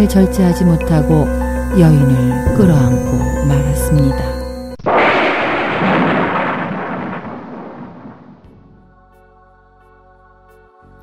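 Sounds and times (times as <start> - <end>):
speech: 0.0 - 4.4
loud crack of thunder rolling into a rumbling roar: 2.5 - 8.8.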